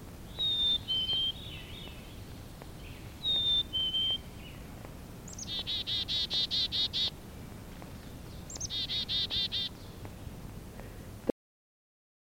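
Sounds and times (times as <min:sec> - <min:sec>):
faint outdoor hum: 0:00.0 - 0:11.3
black-capped chickadee buzzy call notes: 0:00.1 - 0:07.2, 0:08.0 - 0:10.4
black-capped chickadee whistling two-note song: 0:00.3 - 0:04.7, 0:05.3 - 0:07.1, 0:08.2 - 0:10.3.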